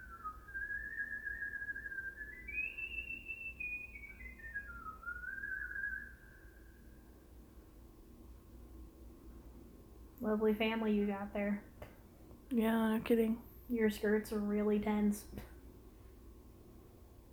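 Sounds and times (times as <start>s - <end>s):
person whistling a wavering sliding tune: 0.0s - 7.0s
faint steady hiss: 0.0s - 17.3s
speech: 10.2s - 11.7s, 12.5s - 15.5s.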